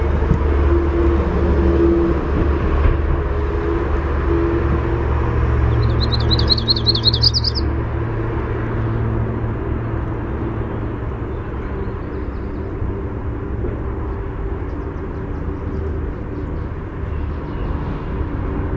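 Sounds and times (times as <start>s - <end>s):
steady low rumble of road traffic: 0.0s - 18.7s
yellow-rumped warbler high warbling trill song: 5.6s - 7.7s.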